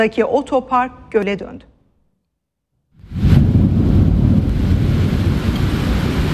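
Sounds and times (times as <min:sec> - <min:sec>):
speech: 0:00.0 - 0:01.7
heavy downpour in a thunderstorm in Trabzon in the evening: 0:03.0 - 0:06.3.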